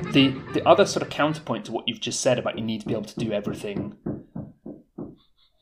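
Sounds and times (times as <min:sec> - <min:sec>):
speech: 0:00.2 - 0:04.1
loud heavy knocks on a door: 0:02.9 - 0:05.2.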